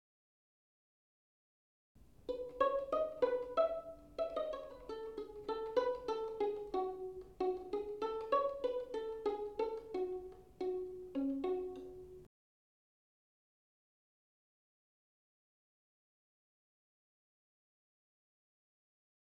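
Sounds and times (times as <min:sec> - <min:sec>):
violin played pizzicato: 0:02.1 - 0:12.3.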